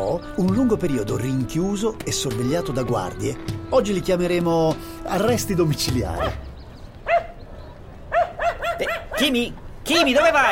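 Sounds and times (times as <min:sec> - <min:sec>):
speech: 0:00.0 - 0:06.5, 0:09.2 - 0:10.5
small female dog barking sharp high-pitched yips: 0:06.2 - 0:06.4, 0:07.0 - 0:07.4, 0:08.1 - 0:09.4.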